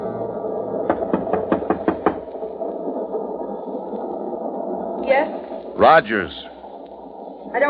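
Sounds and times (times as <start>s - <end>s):
constant low rumbling background: 0.0s - 7.6s
firm knocking on a train compartment door: 0.8s - 2.2s
speech: 5.8s - 6.5s.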